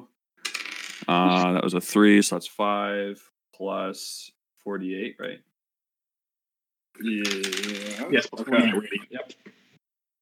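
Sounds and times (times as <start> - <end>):
two eight-sided dice rolling across a tabletop: 0.4 - 1.3, 7.0 - 8.3
speech: 1.1 - 5.5, 7.0 - 9.5.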